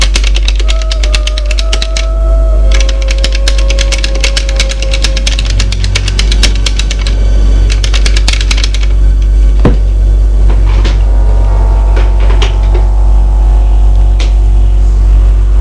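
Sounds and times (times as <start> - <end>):
rapid typing on a computer keyboard: 0.0 - 9.0
constant low hum: 0.0 - 15.5.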